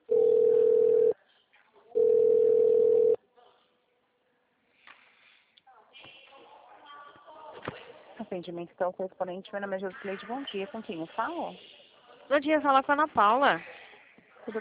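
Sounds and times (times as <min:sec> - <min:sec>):
mid-pitched telephone tones during a call transfer: 0:00.1 - 0:01.2, 0:02.0 - 0:03.2
speech: 0:08.3 - 0:13.8, 0:14.4 - 0:14.6.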